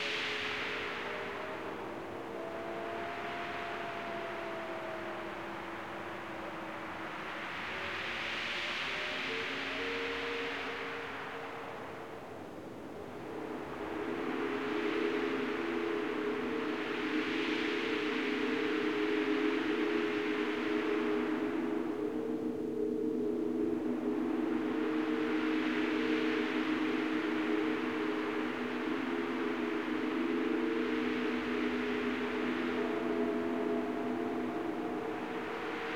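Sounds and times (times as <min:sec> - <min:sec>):
wind: 0:00.0 - 0:35.9.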